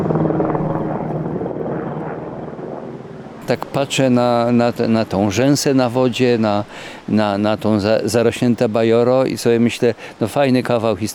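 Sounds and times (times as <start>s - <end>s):
helicopter passing overhead with rotor chop and engine roar: 0.0s - 5.7s
speech: 3.5s - 11.1s.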